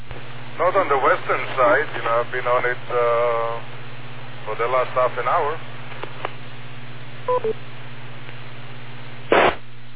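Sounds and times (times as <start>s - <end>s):
steady radio hum and static: 0.0s - 9.9s
speech: 0.6s - 3.7s, 4.4s - 5.7s, 7.2s - 7.6s
radio repeater courtesy tone electronic beeps: 7.3s - 7.6s.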